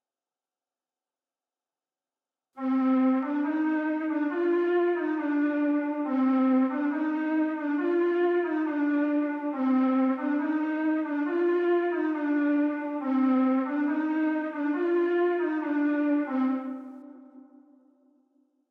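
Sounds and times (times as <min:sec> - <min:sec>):
low flute trap melody loop in C minor: 0:02.6 - 0:17.6.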